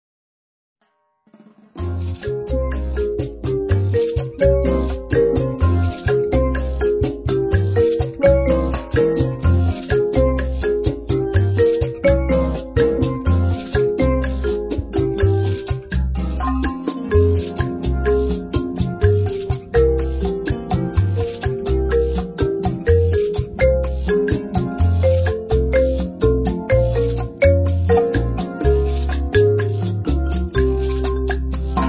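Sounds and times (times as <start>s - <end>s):
latin marimba: 1.7s - 31.8s.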